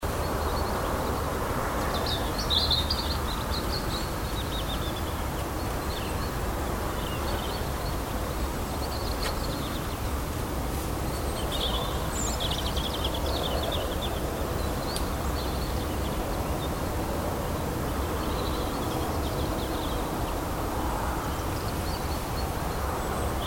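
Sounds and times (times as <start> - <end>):
birds: 0.0 - 23.4.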